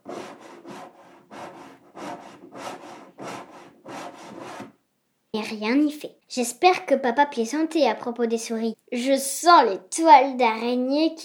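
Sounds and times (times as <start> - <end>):
cat scratching at a wooden door: 0.0 - 4.7
speech: 5.3 - 11.2.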